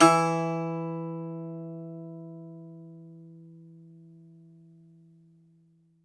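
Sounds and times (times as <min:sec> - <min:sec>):
Greek bouzouki plucked strings: 0:00.0 - 0:04.5.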